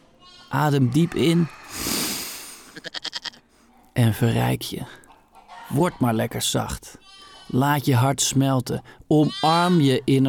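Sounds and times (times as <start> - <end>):
goat bleating: 0.2 - 3.4, 7.0 - 7.7, 9.1 - 10.0
speech: 0.5 - 1.9, 4.0 - 5.0, 5.7 - 10.2.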